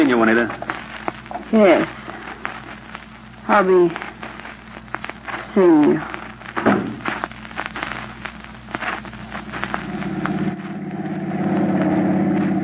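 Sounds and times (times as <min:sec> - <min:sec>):
speech: 0:00.0 - 0:00.7, 0:01.5 - 0:02.0, 0:03.5 - 0:04.1, 0:05.5 - 0:06.8
car engine droning while driving: 0:10.5 - 0:12.6.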